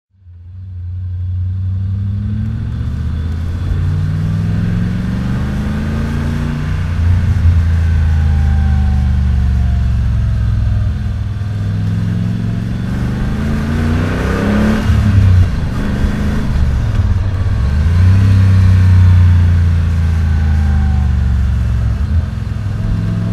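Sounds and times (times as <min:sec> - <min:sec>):
1993 Morgan Plus 8 3.9 litre engine driving: 0:00.1 - 0:23.3.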